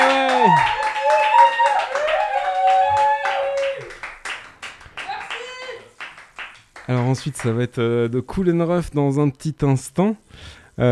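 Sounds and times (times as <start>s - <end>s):
people whooping and cheering: 0.0s - 4.1s
people clapping: 0.0s - 7.6s
speech: 0.4s - 0.8s, 6.9s - 10.9s.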